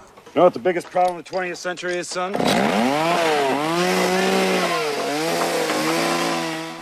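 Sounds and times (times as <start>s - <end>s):
speech: 0.4s - 4.8s
chainsaw running: 2.3s - 6.8s.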